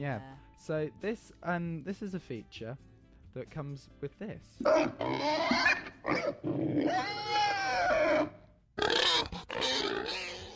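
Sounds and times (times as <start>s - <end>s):
speech: 0.0s - 8.4s
pig rough snorts: 4.6s - 7.4s, 8.1s - 10.5s
pig grunting and oinking: 4.6s - 10.5s.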